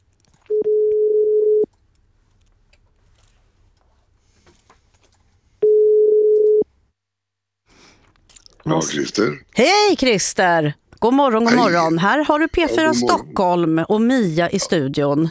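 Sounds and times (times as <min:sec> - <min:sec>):
telephone ringing tone on an outgoing call: 0:00.5 - 0:01.7, 0:05.6 - 0:06.7
speech: 0:08.7 - 0:15.2.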